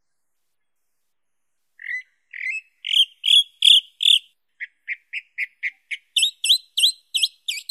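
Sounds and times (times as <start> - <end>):
chalk-browed mockingbird singing, sabia do campo: 1.8 - 7.7.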